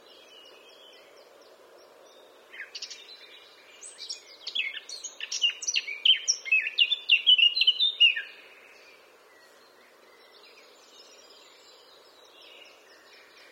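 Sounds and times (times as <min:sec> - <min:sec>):
Eurasian blackcap Sylvia atricapilla song: 0:02.6 - 0:08.3.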